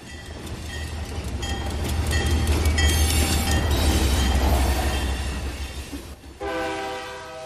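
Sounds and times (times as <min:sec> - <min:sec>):
train rumbling past with heavy clattering roar: 0:00.0 - 0:07.4
loud steady train horn blast: 0:06.4 - 0:07.4.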